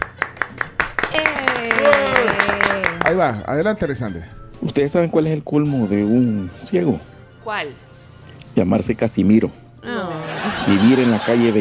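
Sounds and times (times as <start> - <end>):
light applause for a debut: 0.0 - 3.4
speech: 1.2 - 2.4, 3.1 - 7.9, 8.6 - 11.6
laughter: 10.0 - 11.6.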